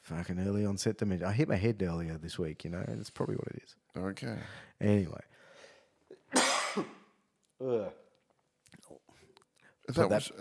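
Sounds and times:
speech: 0.1 - 5.4, 6.8 - 7.0, 7.6 - 8.0, 9.9 - 10.3
harsh cough: 6.3 - 7.1.

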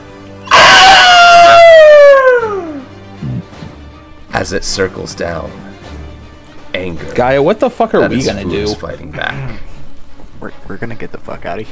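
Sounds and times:
giant flying bird screeching: 0.4 - 2.9
speech: 4.4 - 5.7, 6.9 - 9.7, 10.4 - 11.6.

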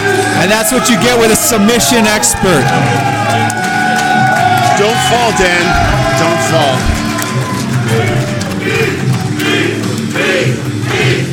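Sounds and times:
crowd cheering at a wrestling match: 0.0 - 11.3
speech: 0.4 - 3.6, 4.8 - 7.0, 7.9 - 9.0.

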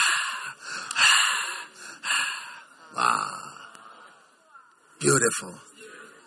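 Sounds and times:
quick heavy excited gasping breaths: 0.0 - 3.6
speech: 5.0 - 5.7.

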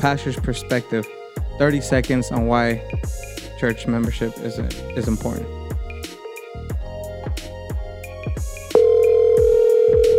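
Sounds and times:
speech: 0.0 - 5.6
rhythmic thumping beat: 0.0 - 10.1
phone ringback tone over a speakerphone: 8.7 - 10.1.

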